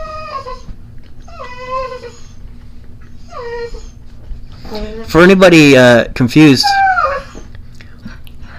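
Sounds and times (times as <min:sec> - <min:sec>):
old female dog with a brain injury howling: 0:00.0 - 0:02.4, 0:03.2 - 0:04.0, 0:06.6 - 0:07.5
old female dog with a brain injury whimpering: 0:00.0 - 0:05.1, 0:06.5 - 0:07.6
speech: 0:04.7 - 0:06.8.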